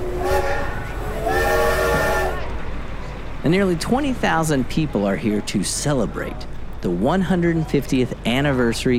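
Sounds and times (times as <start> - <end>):
historic train whistle at Promontory Summit, Utah: 0.0 - 2.5
faint murmur: 0.0 - 8.9
speech: 3.4 - 8.9.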